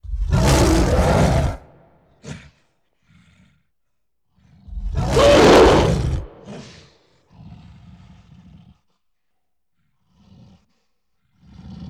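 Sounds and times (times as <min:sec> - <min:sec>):
gorilla roaring: 0:00.2 - 0:01.8, 0:04.7 - 0:06.9
gorilla breathing: 0:04.7 - 0:06.9.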